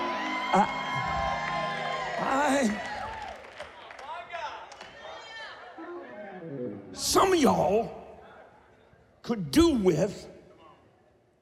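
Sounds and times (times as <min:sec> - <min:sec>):
audience shouting and whooping during a sermon: 0:00.0 - 0:03.6
audience cheering during a sermon: 0:00.0 - 0:06.4
speech: 0:00.5 - 0:00.8, 0:07.2 - 0:08.0, 0:09.3 - 0:10.3.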